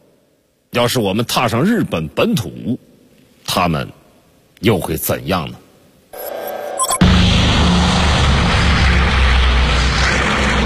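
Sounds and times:
speech: 0.8s - 2.9s, 3.6s - 4.0s, 4.6s - 5.6s
B-29 Superfortress heavy bombers flying: 6.3s - 10.6s.

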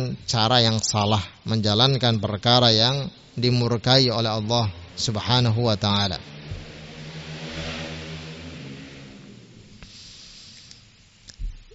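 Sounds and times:
speech: 0.0s - 6.4s
loud motorcycle revving as it passes by: 3.2s - 11.2s.

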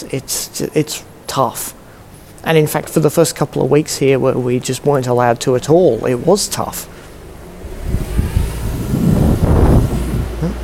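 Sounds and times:
speech: 0.0s - 1.8s, 2.4s - 7.0s
car engine rumbling as the vehicle pulls away: 5.9s - 10.6s
wind buffeting the microphone: 7.2s - 10.6s.

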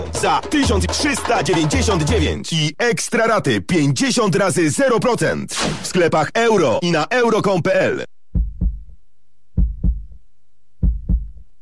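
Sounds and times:
speech: 0.2s - 8.1s
heartbeat thumping: 8.3s - 9.0s, 9.6s - 10.2s, 10.8s - 11.5s.

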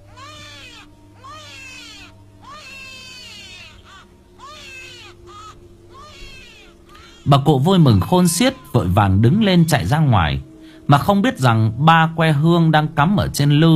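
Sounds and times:
newborn baby crying just after birth: 0.0s - 9.9s
speech: 7.2s - 13.7s.

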